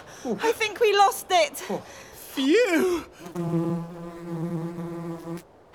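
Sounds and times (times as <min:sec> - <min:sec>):
speech: 0:00.3 - 0:03.8
bee on a flower buzzing: 0:03.2 - 0:05.4.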